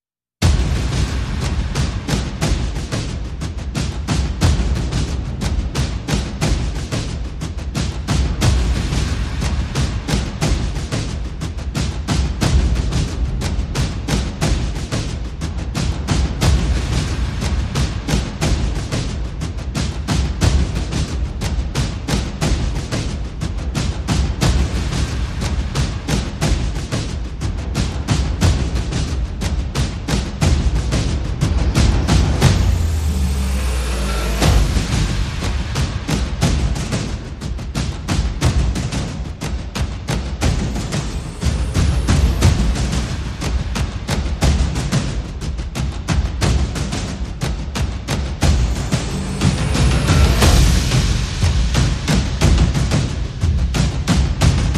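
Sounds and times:
percussion: 0:00.4 - 0:54.7
sound effects: 0:31.9 - 0:36.1.

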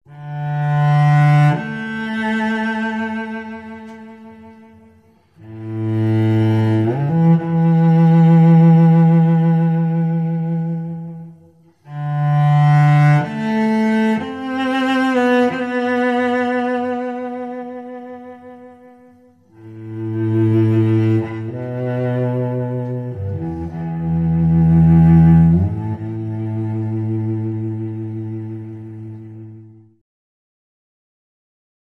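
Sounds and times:
melancholy cello: 0:00.1 - 0:30.0.

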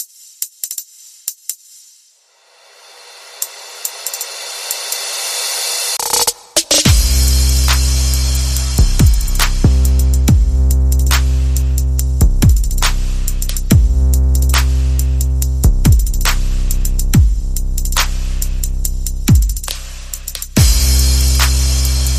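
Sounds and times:
percussion: 0:00.0 - 0:22.1
bass: 0:06.9 - 0:22.1.

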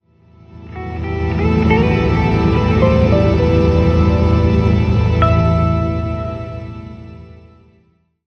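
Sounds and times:
musical sting: 0:01.1 - 0:07.6.

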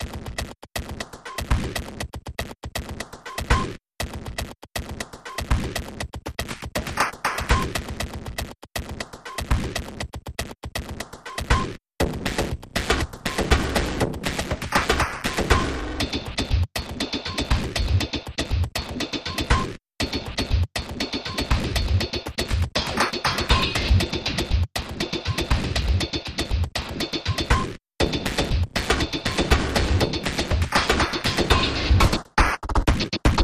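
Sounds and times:
glitch percussion: 0:00.0 - 0:33.4.

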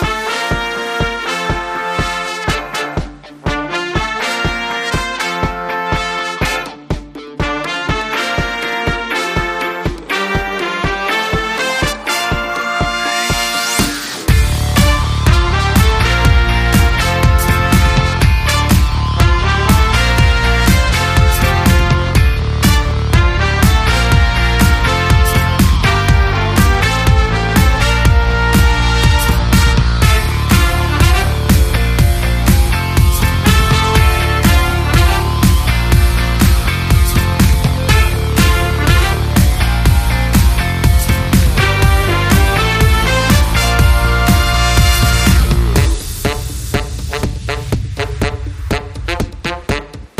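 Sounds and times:
undistorted guitar synth: 0:00.1 - 0:46.0
synth bass: 0:12.3 - 0:50.0.

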